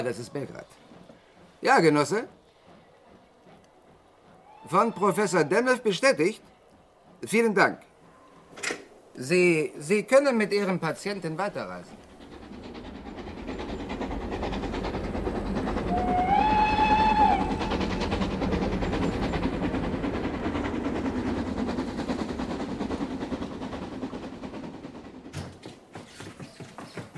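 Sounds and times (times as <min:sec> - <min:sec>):
speech: 0:00.0 - 0:00.9, 0:01.6 - 0:02.4, 0:04.6 - 0:06.5, 0:07.2 - 0:07.9, 0:08.6 - 0:12.0
train rumbling and clattering while crossing a border: 0:00.0 - 0:27.1
train whistle blast: 0:15.9 - 0:18.0.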